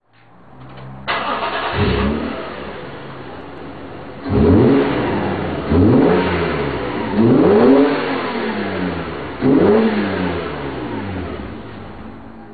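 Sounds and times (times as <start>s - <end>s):
car muffler: 0.7s - 12.3s.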